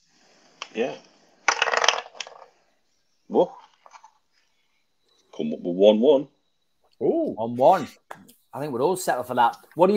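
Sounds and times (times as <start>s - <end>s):
speech: 0.8s - 1.1s, 3.3s - 3.6s, 5.4s - 6.3s, 7.0s - 9.9s
dice rattling and clattering across a hard surface: 1.4s - 2.6s.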